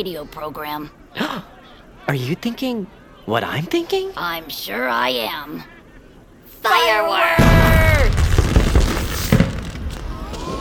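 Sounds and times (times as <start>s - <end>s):
speech: 0.0s - 5.8s, 6.6s - 8.2s
fireworks booming burst: 7.4s - 10.5s
shrill whistling firework rocket: 7.4s - 10.5s.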